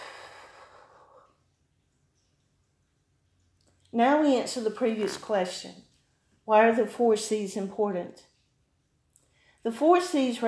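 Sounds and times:
soft breathing: 0:00.0 - 0:01.6, 0:09.2 - 0:09.7
speech: 0:03.9 - 0:05.9, 0:06.5 - 0:08.3, 0:09.6 - 0:10.4.

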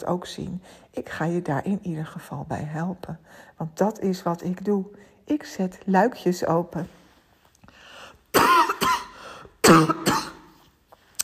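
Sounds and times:
speech: 0:00.0 - 0:07.0, 0:09.6 - 0:10.2
harsh raspy coughs from a tickle in the throat: 0:08.3 - 0:10.6.

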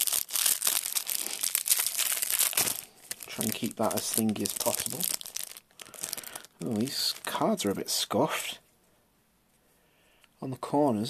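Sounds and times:
foil wrapper on a trading card promo pack crinkling and tearing open: 0:00.0 - 0:07.7
speech: 0:03.4 - 0:05.2, 0:06.6 - 0:08.6, 0:10.4 - 0:11.0.

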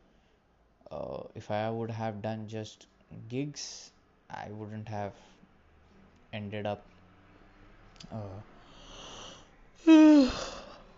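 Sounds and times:
speech: 0:01.0 - 0:05.3, 0:06.3 - 0:06.9, 0:08.0 - 0:08.5
person yawning: 0:09.0 - 0:10.9.

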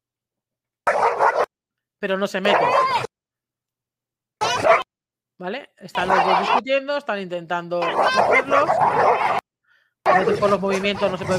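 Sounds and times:
excited dog barking outside: 0:00.8 - 0:01.5, 0:02.4 - 0:03.1, 0:04.4 - 0:04.9, 0:05.9 - 0:06.6, 0:07.8 - 0:09.4, 0:10.0 - 0:11.3
speech: 0:02.0 - 0:03.1, 0:05.4 - 0:09.4, 0:10.1 - 0:11.3.

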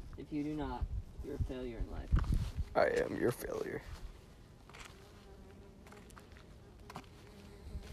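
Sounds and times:
speech: 0:00.5 - 0:04.1
bee buzzing after a dog steps on it: 0:02.7 - 0:07.8.

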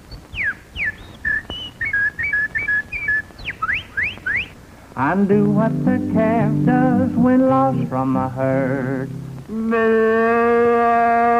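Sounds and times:
person whistling a bird imitation: 0:00.4 - 0:04.5
speech: 0:05.0 - 0:11.3.

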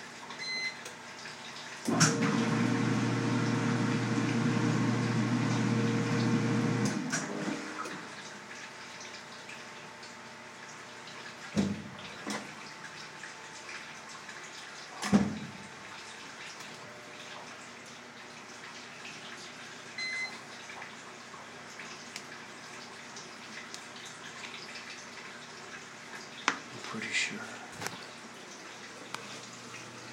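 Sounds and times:
water running from a tap filling a tub or container: 0:00.4 - 0:30.1
speech: 0:27.0 - 0:27.6.

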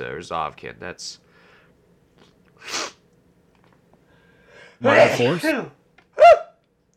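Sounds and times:
speech: 0:00.2 - 0:01.2, 0:04.8 - 0:06.4
person sneezing: 0:02.2 - 0:03.0.

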